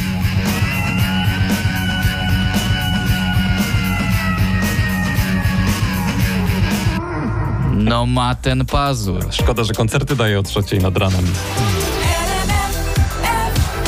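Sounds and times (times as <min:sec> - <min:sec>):
loud driving rock music with a pounding beat: 0:00.0 - 0:13.8
black cat yowling in long wails: 0:01.4 - 0:07.4
speech: 0:07.9 - 0:11.8.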